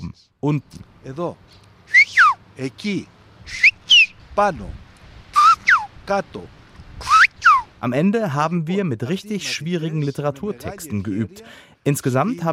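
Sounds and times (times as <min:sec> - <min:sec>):
speech: 0:00.2 - 0:01.7, 0:02.6 - 0:03.6, 0:04.4 - 0:04.8, 0:06.1 - 0:07.1, 0:07.8 - 0:12.5
whistled language syllables: 0:01.9 - 0:02.4, 0:03.4 - 0:04.2, 0:05.3 - 0:05.9, 0:07.0 - 0:07.7.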